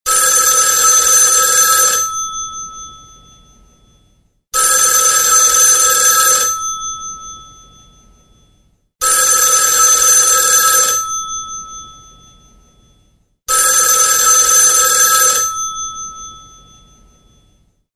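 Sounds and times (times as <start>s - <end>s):
analogue telephone: 0.1s - 3.0s, 4.6s - 7.4s, 9.0s - 12.0s, 13.5s - 16.9s.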